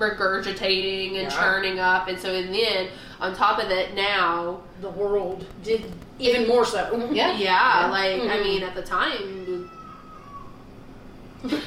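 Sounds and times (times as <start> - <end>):
speech: 0.0 - 9.4, 11.4 - 11.6
cat howling: 9.2 - 10.7.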